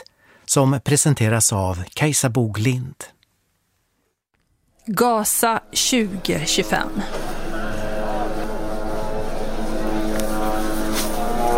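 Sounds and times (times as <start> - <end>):
speech: 0.5 - 3.2, 4.8 - 7.3
indistinct noise: 5.6 - 11.5
military drone propeller buzzing overhead: 5.6 - 11.5.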